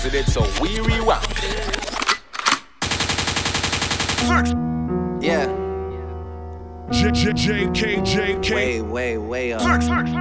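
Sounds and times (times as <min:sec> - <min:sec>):
speech: 0:00.0 - 0:01.7, 0:04.2 - 0:05.6, 0:06.9 - 0:10.1
automatic gunfire: 0:02.8 - 0:04.6
gunshot sound effects: 0:02.8 - 0:04.6.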